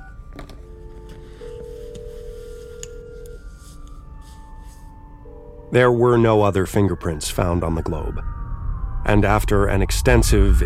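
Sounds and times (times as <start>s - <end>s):
electronic telephone tones of a phone being dialed: 0.0s - 3.6s, 5.2s - 5.9s
speech: 0.4s - 0.6s, 5.7s - 8.4s, 9.1s - 10.6s.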